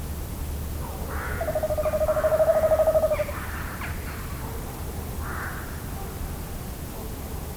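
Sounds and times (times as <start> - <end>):
low rumbling background noise: 0.0 - 7.5
tawny owl hooting: 1.2 - 3.6.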